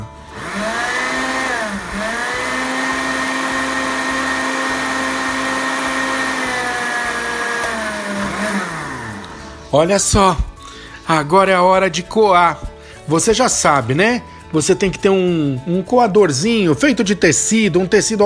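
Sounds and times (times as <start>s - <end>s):
blender blending soaked heated rice into rice milk: 0.0s - 9.8s
speech: 9.7s - 10.5s, 11.1s - 18.2s.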